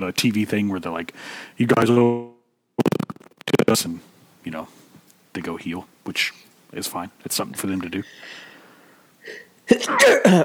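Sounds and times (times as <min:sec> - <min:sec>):
speech: 0:00.0 - 0:02.3, 0:03.7 - 0:04.8, 0:05.4 - 0:08.5, 0:09.2 - 0:10.4
person sneezing: 0:09.8 - 0:10.4.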